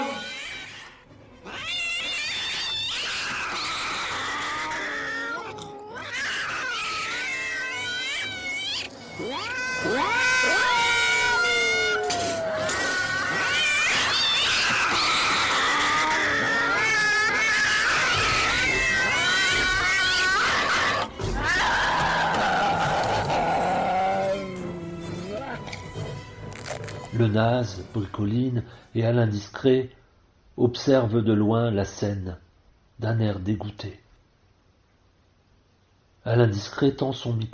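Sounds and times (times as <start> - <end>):
cats yowling and meowing: 0.0 - 25.7
speech: 27.3 - 30.0, 30.6 - 32.4, 33.0 - 34.0, 36.2 - 37.5.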